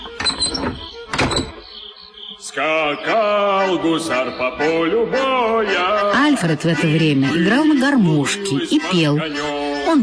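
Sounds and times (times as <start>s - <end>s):
metal bolt on a shed door sliding shut: 0.0s - 1.6s
speech: 2.6s - 10.0s.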